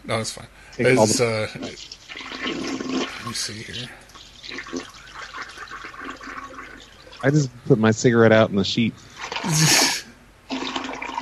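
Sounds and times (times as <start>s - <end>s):
speech: 0.1s - 4.8s, 7.2s - 9.9s
toilet flushing: 1.2s - 3.7s, 4.4s - 7.4s, 9.2s - 11.1s.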